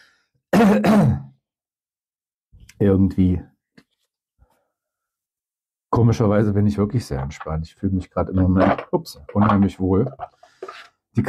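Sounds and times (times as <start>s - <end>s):
person coughing: 0.6s - 1.4s
speech: 2.8s - 3.5s, 5.9s - 11.2s.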